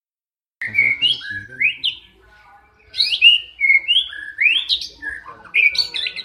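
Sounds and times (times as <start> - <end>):
Oriental magpie-robin singing clear varied whistled notes: 0.6 - 2.2, 2.8 - 6.2.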